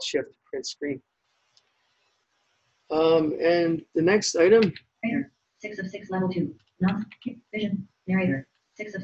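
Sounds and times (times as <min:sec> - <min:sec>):
synthesized screen-reader voice speaking: 0:00.0 - 0:01.0, 0:02.9 - 0:09.0
speech: 0:00.0 - 0:01.1, 0:02.9 - 0:09.0.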